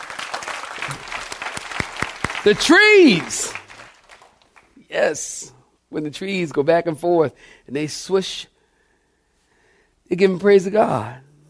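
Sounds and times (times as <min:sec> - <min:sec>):
audience clapping hands: 0:00.0 - 0:04.8
speech: 0:00.9 - 0:01.2, 0:02.4 - 0:03.6, 0:04.9 - 0:08.5, 0:10.1 - 0:11.2.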